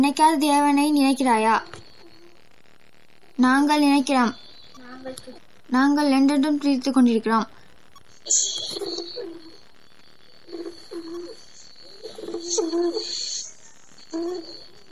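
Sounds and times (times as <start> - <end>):
speech: 0.0 - 1.8, 3.4 - 7.6, 8.2 - 9.4, 12.4 - 13.2, 14.1 - 14.6
thin steady tone: 0.0 - 14.9
faint higher chirps: 0.1 - 14.9
white dove cooing: 8.4 - 9.6, 10.4 - 13.2, 14.1 - 14.7.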